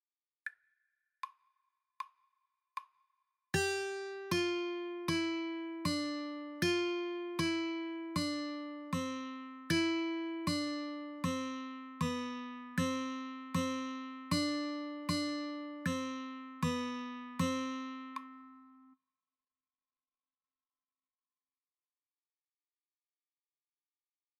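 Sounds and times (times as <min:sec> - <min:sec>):
guitar strings: 0:03.6 - 0:18.8.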